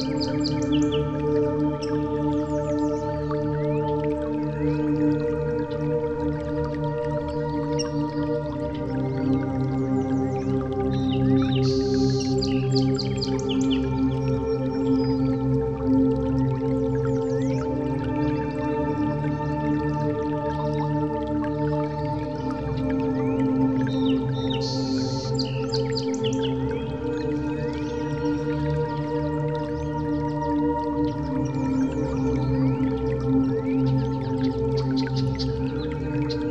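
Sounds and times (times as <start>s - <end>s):
slow soft music of sustained warm low tones: 0.0s - 36.4s.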